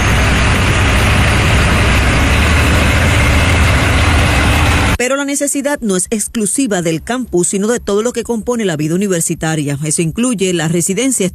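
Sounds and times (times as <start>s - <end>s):
heavy tanker truck engine idling: 0.0s - 5.0s
speech: 5.2s - 11.3s.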